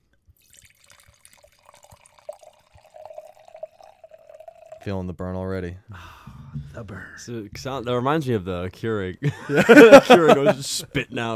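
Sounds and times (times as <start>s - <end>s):
drink pouring into a glass: 0.2s - 5.0s
speech: 4.8s - 11.3s
laughter: 9.2s - 11.3s.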